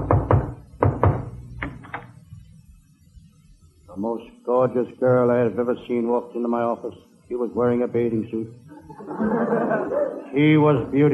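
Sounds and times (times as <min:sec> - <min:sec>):
knocks on a wooden door: 0:00.0 - 0:01.3
speech: 0:04.0 - 0:11.1
laughter: 0:08.7 - 0:10.4.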